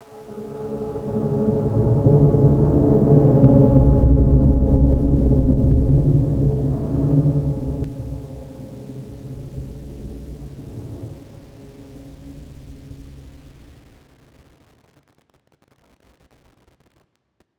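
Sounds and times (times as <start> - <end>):
dungeon ambience: 0.0 - 13.6.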